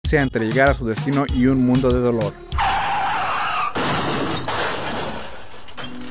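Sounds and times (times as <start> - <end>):
speech: 0.1 - 2.4
screeching car tires: 2.6 - 5.0
car crash impact with crunching metal: 2.8 - 5.6
debris settling and rattling: 3.8 - 6.0.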